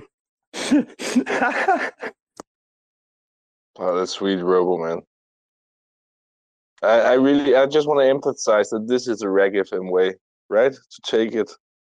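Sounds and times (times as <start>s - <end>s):
laughter: 0.6s - 2.1s, 6.8s - 9.4s
person sniffling: 0.6s - 2.1s
speech: 0.7s - 2.2s, 3.8s - 5.1s, 6.8s - 11.9s.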